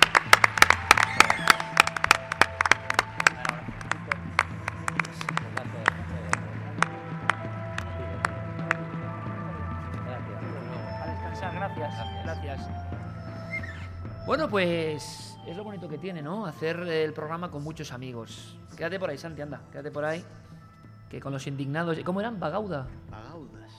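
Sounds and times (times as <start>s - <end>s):
audience applause for a radio guest: 0.0s - 9.0s
speech: 14.3s - 20.4s, 21.1s - 23.7s.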